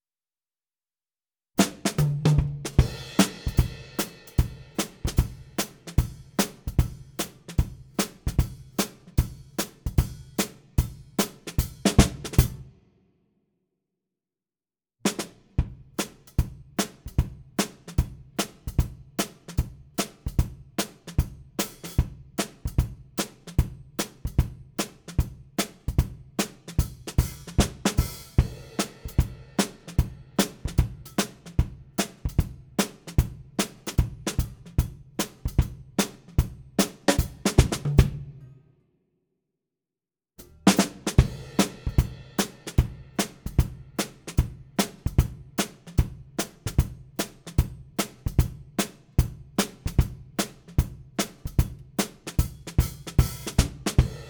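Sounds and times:
ragtime drums: 0:01.6 - 0:12.6, 0:15.1 - 0:38.5, 0:40.4 - 0:54.2.

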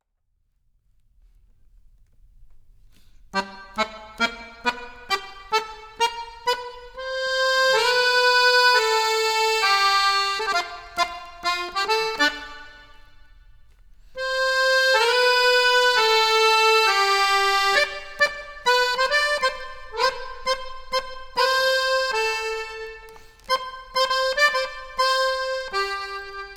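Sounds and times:
accordion: 0:03.2 - 0:26.5.

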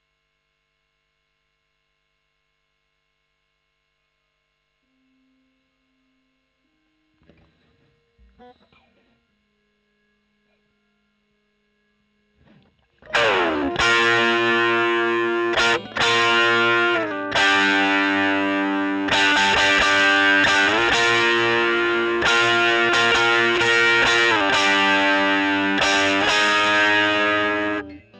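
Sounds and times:
overdriven electric guitar recorded with a Gefell microphone: 0:12.4 - 0:28.1.

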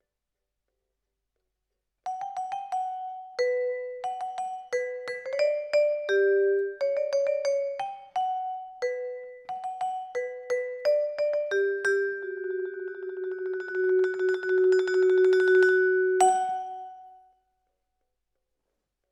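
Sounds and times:
vibraphone: 0:02.1 - 0:17.2.

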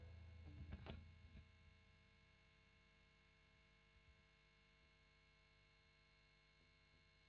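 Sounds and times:
overdriven electric guitar recorded with Royer: 0:00.0 - 0:01.7.

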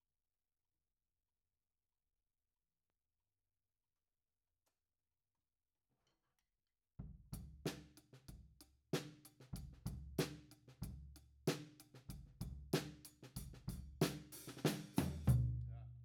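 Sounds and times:
drum beat: 0:09.0 - 0:15.5.

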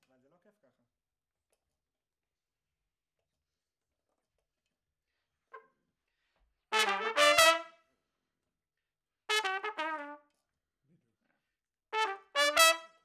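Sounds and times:
trumpet in a room: 0:06.7 - 0:07.8, 0:09.3 - 0:10.3, 0:12.0 - 0:13.0.

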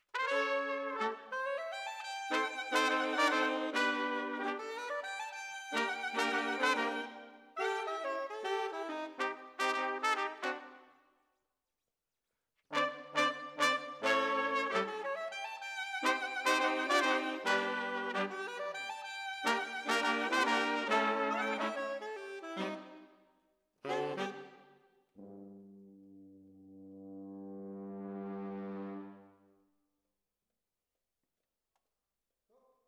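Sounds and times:
brass instruments: 0:00.0 - 0:10.9, 0:12.7 - 0:23.0, 0:23.8 - 0:25.7, 0:27.0 - 0:29.4.

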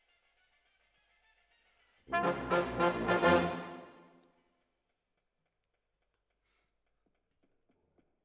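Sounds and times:
horns: 0:02.1 - 0:04.1.

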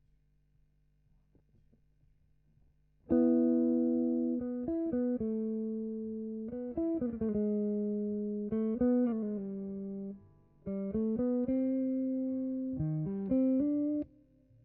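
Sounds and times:
guitar: 0:03.0 - 0:14.6.

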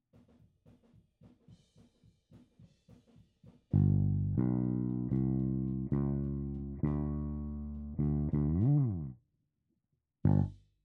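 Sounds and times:
bass: 0:03.8 - 0:09.2, 0:10.2 - 0:10.8.

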